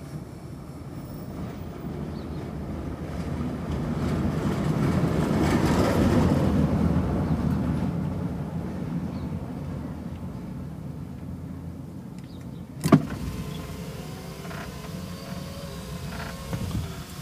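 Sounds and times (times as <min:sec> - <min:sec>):
low engine rumble inside the vehicle: 0:00.0 - 0:17.2
car electric windows whirring as they roll down while driving: 0:12.8 - 0:17.2.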